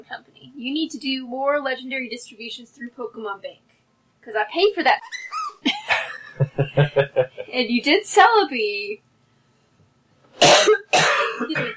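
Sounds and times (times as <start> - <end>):
speech: 0.0 - 9.1, 10.4 - 11.7
laughter: 5.0 - 7.4
person coughing: 6.6 - 7.4, 10.4 - 11.7.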